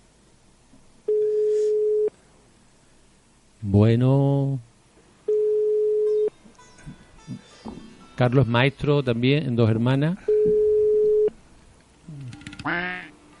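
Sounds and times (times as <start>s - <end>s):
telephone ringback tone of a call to a teacher's mobile phone: 1.1s - 2.1s, 5.3s - 6.3s, 10.3s - 11.3s
speech: 3.7s - 4.7s, 8.2s - 10.3s.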